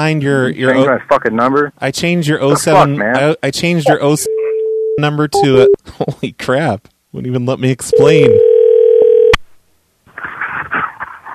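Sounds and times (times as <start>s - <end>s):
speech: 0.0s - 4.4s, 5.0s - 8.5s
steady loud electronic phone tone while calling: 3.9s - 5.8s, 7.9s - 9.4s.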